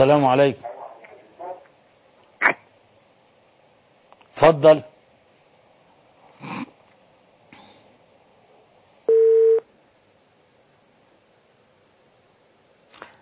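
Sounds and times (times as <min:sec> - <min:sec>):
speech: 0:00.0 - 0:00.7, 0:04.4 - 0:04.9
telephone line tone after a dropped call: 0:09.1 - 0:09.6.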